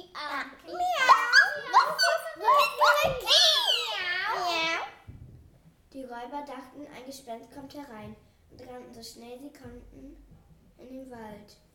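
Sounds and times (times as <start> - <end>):
children's voices imitating a donkey, dog, cat and rooster: 0.0 - 5.1
speech: 6.2 - 11.7.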